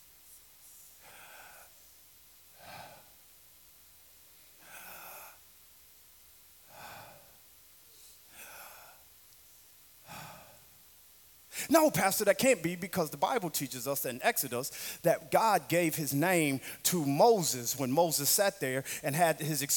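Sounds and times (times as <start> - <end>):
slow deliberate breathing in and out: 0.2 - 3.4, 4.3 - 5.6, 6.6 - 10.9, 11.5 - 11.7, 14.7 - 15.0, 18.8 - 19.0
speech: 11.7 - 19.7.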